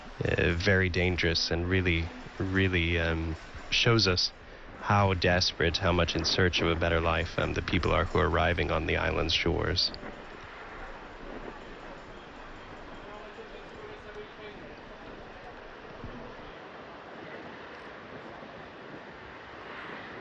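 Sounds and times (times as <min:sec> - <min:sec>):
heavy wind buffeting on a windy day: 0:00.0 - 0:20.1
rough sea surf off the island of Lampedusa: 0:00.0 - 0:20.1
speech: 0:00.2 - 0:10.1.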